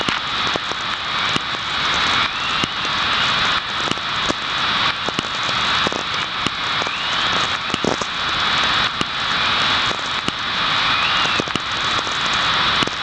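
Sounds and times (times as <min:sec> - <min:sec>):
VLF radio chorus: 0:00.0 - 0:13.0.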